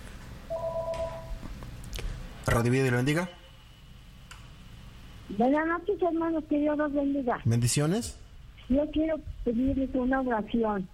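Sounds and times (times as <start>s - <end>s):
low hum: 0.0s - 10.9s
telephone ringing with an incoming call: 0.5s - 1.4s
speech: 2.4s - 3.4s, 5.3s - 10.9s.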